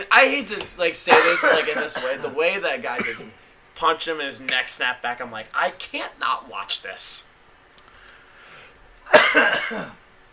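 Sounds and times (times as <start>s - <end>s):
speech: 0.0s - 7.3s, 9.1s - 10.0s
person coughing and choking: 1.1s - 2.3s, 3.0s - 3.4s, 9.1s - 10.1s.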